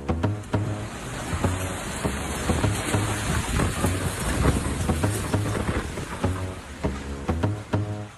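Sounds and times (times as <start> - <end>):
heavy rain in a storm: 0.0 - 8.1
low rumbling tones: 0.0 - 8.1
stormy wind gusts: 0.9 - 6.9.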